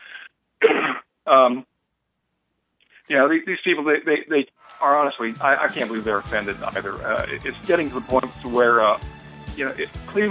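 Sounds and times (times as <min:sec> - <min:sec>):
person with a dry throat clearing it: 0:00.6 - 0:01.6
speech: 0:01.3 - 0:01.7, 0:03.1 - 0:10.2.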